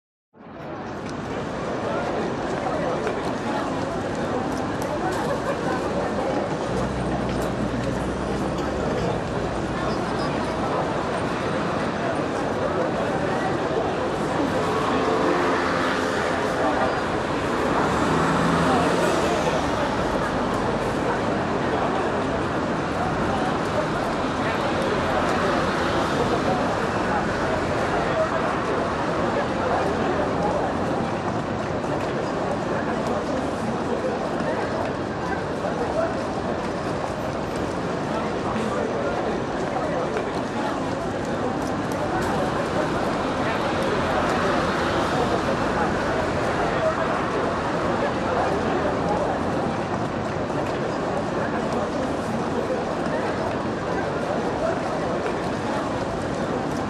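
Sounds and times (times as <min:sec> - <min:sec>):
city street ambience: 0:00.3 - 0:56.8.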